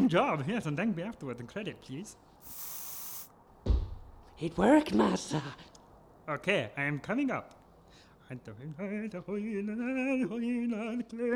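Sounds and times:
speech: 0.1 - 2.7, 4.4 - 5.7, 6.3 - 7.6, 8.3 - 11.3
aerosol sleeping spray sprayed through a window: 2.4 - 3.3
dull low thump: 3.6 - 4.4.

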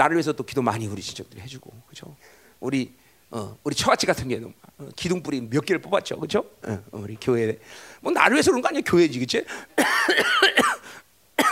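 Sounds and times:
speech: 0.0 - 11.0
harsh coughing: 9.5 - 11.4.

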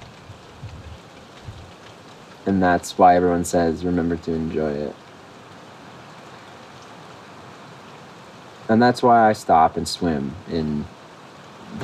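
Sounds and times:
rain falling outdoors by a lake: 0.0 - 11.8
speech: 2.5 - 5.0, 8.7 - 11.0.

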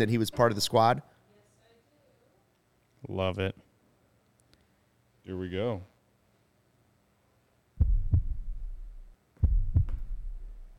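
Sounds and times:
speech: 0.0 - 1.1, 3.0 - 3.7, 5.3 - 5.9
deep heartbeat thumps in a promo video: 7.8 - 10.7.

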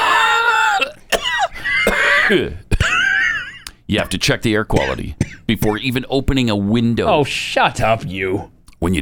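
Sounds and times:
person coughing: 0.6 - 3.6, 4.8 - 5.8
speech: 2.3 - 2.7, 3.9 - 9.0.

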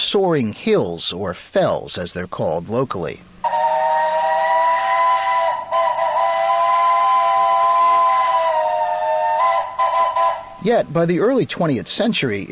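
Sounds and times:
speech: 0.1 - 3.6, 10.6 - 12.5
steam train whistle blast with hissing edge: 3.4 - 10.9.

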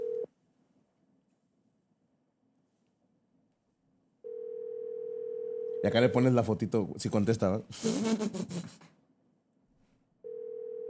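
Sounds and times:
phone call steady low ringback tone: 0.0 - 0.3, 4.3 - 5.8, 10.2 - 10.8
speech: 5.8 - 8.9.

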